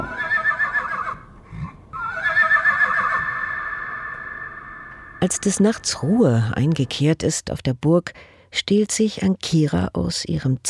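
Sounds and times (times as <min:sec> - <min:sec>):
horse neighing: 0:00.0 - 0:05.8
speech: 0:05.2 - 0:10.6.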